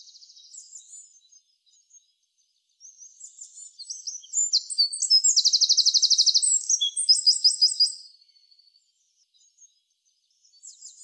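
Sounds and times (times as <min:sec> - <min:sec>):
Eurasian wren Troglodytes troglodytes singing: 0:03.2 - 0:08.1.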